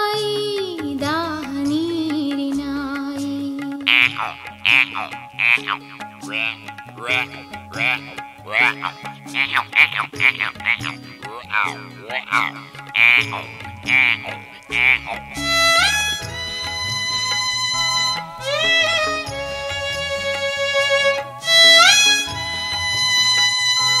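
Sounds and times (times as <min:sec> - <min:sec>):
continuous musical backing with sustained low notes: 0:00.1 - 0:23.9
frogs croaking: 0:03.9 - 0:19.0
speech: 0:05.0 - 0:15.6.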